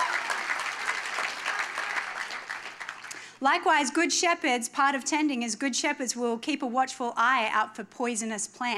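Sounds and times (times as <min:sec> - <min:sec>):
audience clapping: 0:00.0 - 0:03.4
speech: 0:03.4 - 0:08.7.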